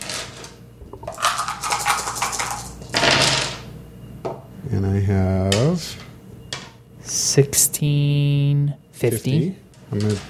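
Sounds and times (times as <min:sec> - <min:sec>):
dice rattling across a hard surface in a dice game: 0:01.0 - 0:02.8
speech: 0:04.8 - 0:06.0, 0:07.4 - 0:10.2.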